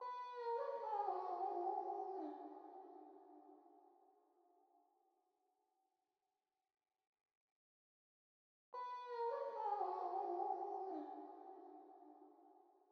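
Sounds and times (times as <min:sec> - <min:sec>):
vocals in D sharp minor: 0:00.0 - 0:04.0, 0:08.8 - 0:12.6.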